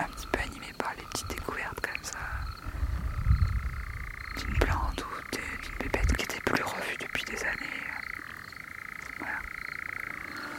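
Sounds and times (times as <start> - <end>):
tree frog calling: 0.0 - 10.5.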